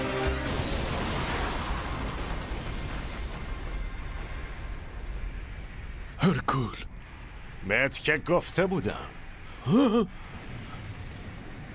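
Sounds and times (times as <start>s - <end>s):
loud explosion: 0.4s - 6.0s
heavy sustained roar and rumble of debris: 0.4s - 11.7s
speech: 6.2s - 6.9s, 7.6s - 10.3s.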